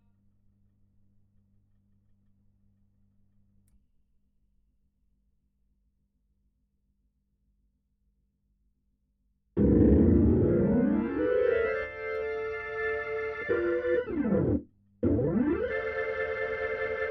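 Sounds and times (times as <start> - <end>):
Hammond organ: 9.6 - 17.0.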